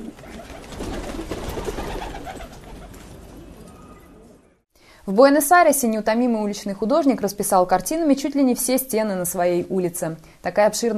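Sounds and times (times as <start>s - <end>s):
pigeons cooing: 0.0s - 4.5s
speech: 5.1s - 10.9s.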